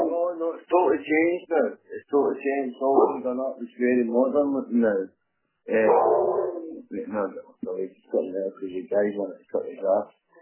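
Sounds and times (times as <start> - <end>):
speech: 0.6 - 10.2
big dog barking and yowling: 5.7 - 6.8.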